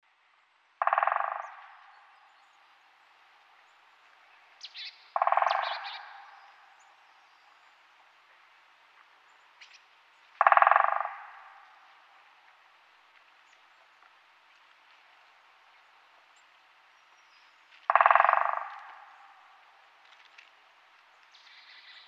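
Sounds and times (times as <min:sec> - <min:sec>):
great spotted woodpecker: 0:00.8 - 0:03.8, 0:04.6 - 0:07.4, 0:09.6 - 0:12.7, 0:17.2 - 0:20.6, 0:21.2 - 0:22.0
birds: 0:00.8 - 0:22.0.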